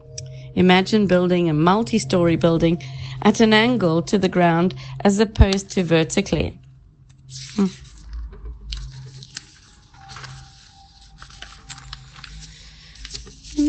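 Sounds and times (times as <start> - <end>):
speech: 0.6 - 6.6, 7.3 - 7.8
pages of paper notes being turned: 7.2 - 13.6.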